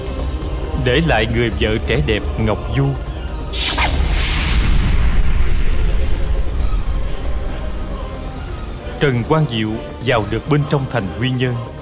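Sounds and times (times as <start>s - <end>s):
speech: 0.8s - 3.7s, 9.0s - 11.8s
hissing burst: 3.5s - 8.3s
fire roaring after gunpowder explosion: 3.5s - 8.6s
gunpowder explosion boom: 3.5s - 8.6s.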